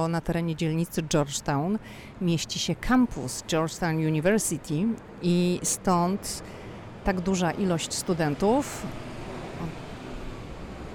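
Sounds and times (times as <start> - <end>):
speech: 0.0 - 9.8
airplane passing overhead: 5.8 - 10.9
car going by on a nearby road: 6.4 - 10.9.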